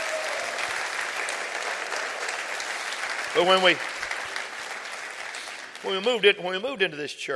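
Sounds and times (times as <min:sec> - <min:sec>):
crowd applauding: 0:00.0 - 0:06.7
speech: 0:03.4 - 0:04.0, 0:05.8 - 0:07.3.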